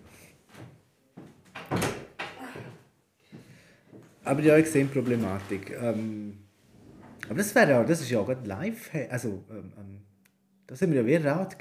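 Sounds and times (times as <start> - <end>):
door pulled shut with a solid thump: 1.5 - 2.4
speech: 4.3 - 6.4, 7.3 - 10.1, 10.7 - 11.5.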